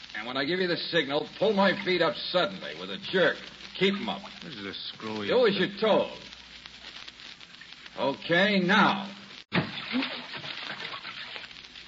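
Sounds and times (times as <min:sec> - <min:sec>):
speech: 0:00.2 - 0:06.3, 0:08.0 - 0:09.2
water sloshing and splashing in a bathtub as someone goes under: 0:09.5 - 0:11.8.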